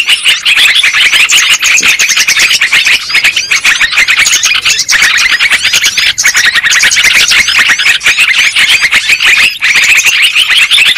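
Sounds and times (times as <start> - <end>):
lovebirds squawking and chirping as a trapping lure sound: 0.0 - 10.9.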